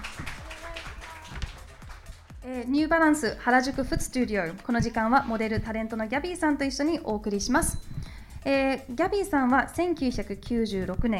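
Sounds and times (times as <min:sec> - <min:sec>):
audience applause welcoming a guest at a talk session in a store: 0:00.0 - 0:02.1
speech: 0:02.5 - 0:11.1.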